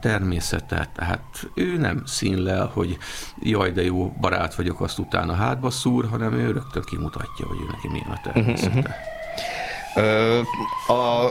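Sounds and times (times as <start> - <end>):
emergency vehicle siren wailing in a two-tone pattern outside: 0.0 - 11.3
faint noise: 0.0 - 11.3
speech: 0.0 - 11.3
laughter: 8.4 - 9.0.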